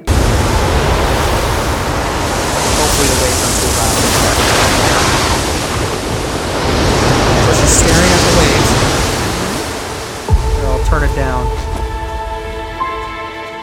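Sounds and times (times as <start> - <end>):
sustained musical tones: 0.0 - 2.0, 10.3 - 13.6
ocean waves crashing: 0.0 - 13.6.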